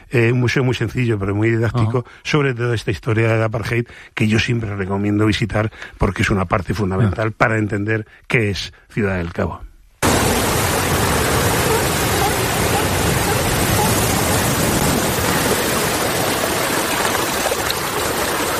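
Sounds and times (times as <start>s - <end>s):
speech: 0.1s - 9.7s
sea waves washing against the coast beside the port at Cape Town: 10.0s - 18.5s.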